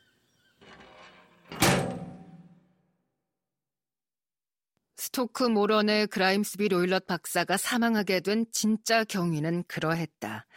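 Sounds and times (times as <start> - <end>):
heavy metal door creaking as it swings: 0.6 - 2.6
speech: 5.0 - 10.5.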